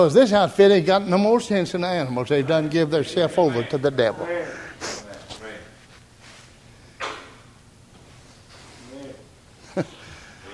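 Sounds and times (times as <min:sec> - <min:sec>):
speech: 0:00.0 - 0:05.0, 0:09.8 - 0:10.0
person with the flu blowing nose: 0:04.6 - 0:05.1.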